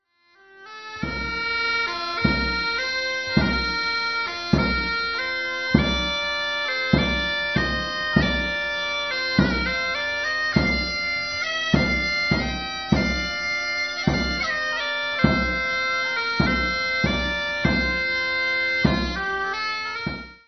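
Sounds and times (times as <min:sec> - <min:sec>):
bagpipe playing a shepherds' march: 0:00.2 - 0:20.4.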